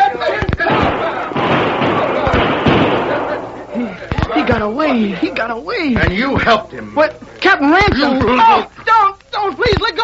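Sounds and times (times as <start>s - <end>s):
laughter: 0.0s - 5.6s
gunshots at a fleeing man during a frontier skirmish: 0.4s - 4.7s
speech: 4.6s - 8.7s, 9.4s - 10.0s.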